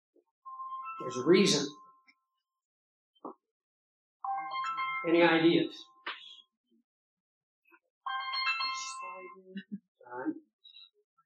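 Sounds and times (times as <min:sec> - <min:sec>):
mobile phone ringing with bright melodic electronic ringtone: 0:00.5 - 0:02.0, 0:04.3 - 0:05.2, 0:08.0 - 0:09.5
speech: 0:01.0 - 0:01.8, 0:05.0 - 0:05.9.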